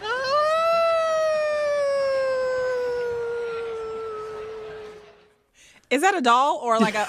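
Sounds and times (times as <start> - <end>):
woman howling imitating a wolf or dog: 0.0 - 5.0
speech: 5.9 - 7.0.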